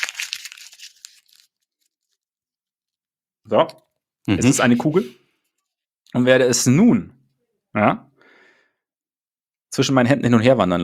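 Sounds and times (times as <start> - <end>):
sheet of paper being crumpled: 0.0 - 2.4
speech: 3.5 - 5.2, 6.1 - 8.1, 9.7 - 10.8.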